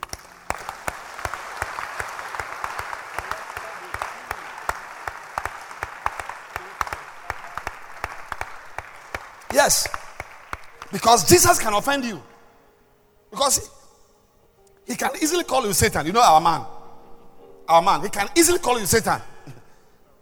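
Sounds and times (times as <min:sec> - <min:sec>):
crowd of people clapping their hands: 0:00.0 - 0:11.7
speech: 0:09.6 - 0:10.0, 0:10.9 - 0:12.3, 0:13.4 - 0:13.7, 0:14.9 - 0:16.7, 0:17.7 - 0:19.3.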